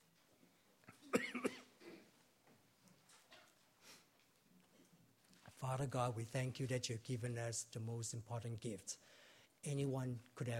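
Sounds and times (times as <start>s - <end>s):
person coughing raspy coughs: 0.9s - 2.1s
speech: 5.6s - 10.5s
breathing: 9.0s - 9.6s.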